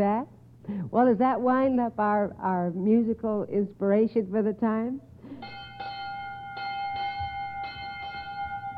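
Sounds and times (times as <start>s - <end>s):
speech: 0.0s - 5.5s
school bell ringing end of class: 5.4s - 8.7s.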